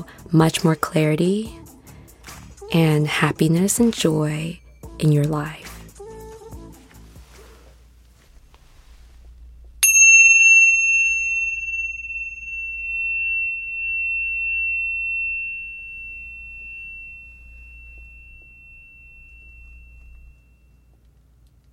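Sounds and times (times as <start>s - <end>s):
speech: 0.0s - 1.6s, 2.7s - 5.6s
low steady hum: 0.0s - 21.7s
bright metallic chime ringing: 9.8s - 20.9s.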